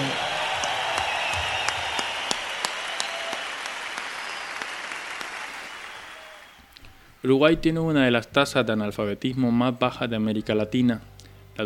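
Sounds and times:
audience applause at a rock gig: 0.0s - 6.7s
speech: 7.2s - 11.6s.

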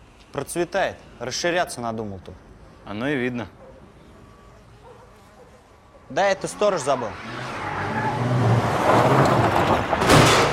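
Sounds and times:
speech: 0.3s - 3.6s, 6.1s - 7.5s
Lada car engine and road rumble driving up to a garage: 6.5s - 10.5s
Lada car crashing into a garage wall: 8.8s - 10.5s.

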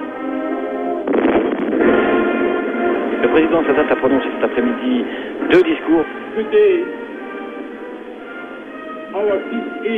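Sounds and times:
brass band playing national anthems at a state ceremony: 0.0s - 9.8s
cannon fire booms at a state ceremony: 1.0s - 5.5s
speech: 3.3s - 7.1s, 9.2s - 9.9s.

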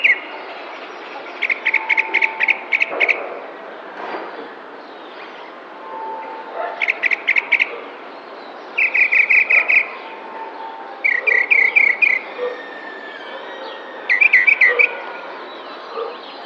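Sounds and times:
tropical mockingbird singing in a neighbourhood park in San Cristóbal de Las Casas: 0.0s - 3.4s, 6.3s - 16.4s.

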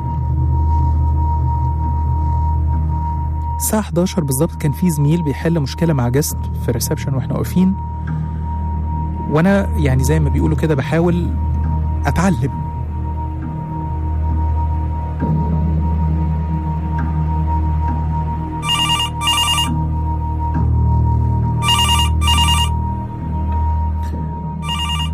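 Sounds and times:
steady low droning background: 0.0s - 25.1s
speech: 3.6s - 8.2s, 9.3s - 12.6s
telephone ringing at a hotel reception desk: 18.6s - 19.8s, 21.6s - 22.8s, 24.6s - 25.1s.

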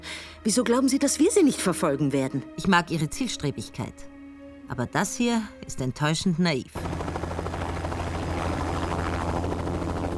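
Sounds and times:
speech: 0.4s - 4.1s, 4.7s - 6.9s
helicopter in flight rotor and engine roar: 6.8s - 10.1s.

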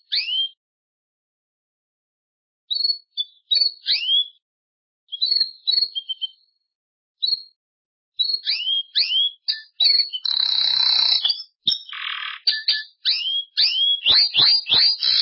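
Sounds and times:
canary song with whistled notes and buzzy rattling trill: 0.0s - 0.6s, 2.7s - 4.4s, 5.1s - 6.4s, 8.2s - 15.2s.

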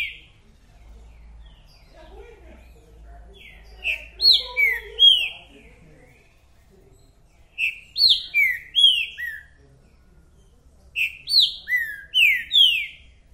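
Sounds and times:
Green-winged saltator singing in a territorial dispute: 0.0s - 0.3s, 3.4s - 5.5s, 7.4s - 9.6s, 11.0s - 13.2s.

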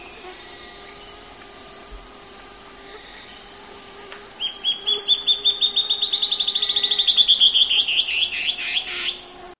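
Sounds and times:
band-tailed antbird Hypocnemoides maculicauda singing: 0.0s - 9.5s
faint steady low hum: 0.0s - 9.5s.

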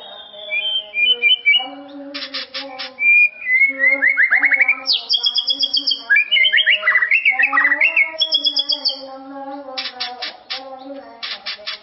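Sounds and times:
White-rumped shama song of clear whistled phrases and harsh rasps: 0.0s - 1.6s, 3.0s - 9.0s.

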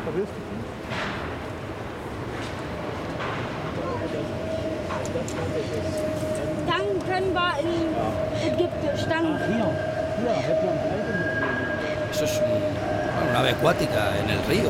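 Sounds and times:
speech: 0.1s - 1.2s, 5.1s - 11.2s, 12.1s - 14.6s
train passing near roadworks: 1.4s - 14.6s
higher whine: 8.1s - 14.6s
steady tonal hum: 8.5s - 14.6s.

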